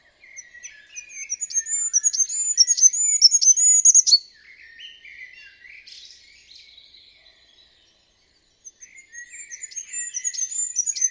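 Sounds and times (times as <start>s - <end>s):
bird calls: 0.0s - 5.6s, 8.6s - 11.0s.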